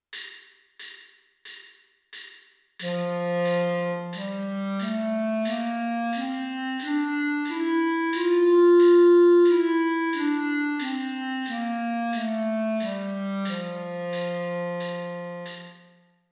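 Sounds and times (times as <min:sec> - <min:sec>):
clarinet playing G major scale: 0:02.8 - 0:16.0.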